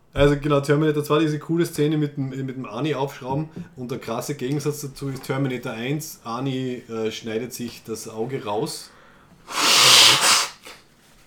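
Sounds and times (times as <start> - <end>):
speech: 0.2 - 9.7
sniff: 9.4 - 10.9
sneeze: 9.5 - 10.8.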